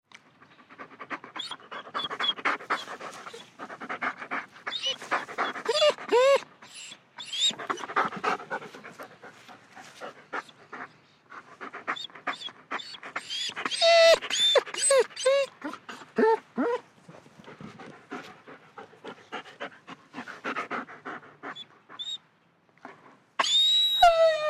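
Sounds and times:
German Shepherd dog panting: 0.4s - 22.2s
German Shepherd dog whining: 1.4s - 3.5s, 4.6s - 8.4s, 11.9s - 16.8s, 21.5s - 22.2s, 23.4s - 24.4s.

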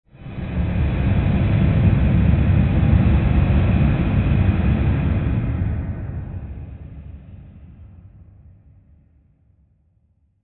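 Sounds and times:
airy rush rumble swell: 0.1s - 6.8s.

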